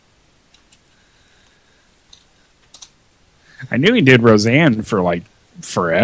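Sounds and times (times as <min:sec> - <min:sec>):
soft keyboard typing clicks: 0:02.1 - 0:03.0
speech: 0:03.7 - 0:06.0.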